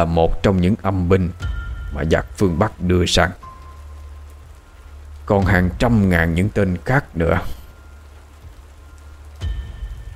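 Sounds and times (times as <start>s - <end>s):
speech: 0.0s - 3.4s, 5.3s - 7.6s
heavy rain falling: 0.0s - 10.1s.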